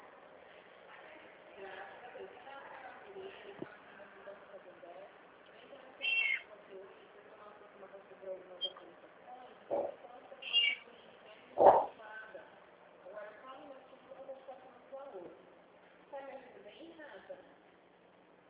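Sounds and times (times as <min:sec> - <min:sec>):
low murmur of voices: 0:00.0 - 0:15.6
cat meowing: 0:06.0 - 0:06.4, 0:10.4 - 0:10.8.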